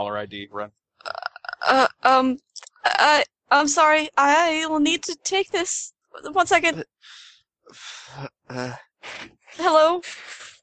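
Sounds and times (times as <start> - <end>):
speech: 0.0 - 0.8, 1.6 - 10.4
drawn-out throaty burps: 1.0 - 1.9, 8.1 - 8.9.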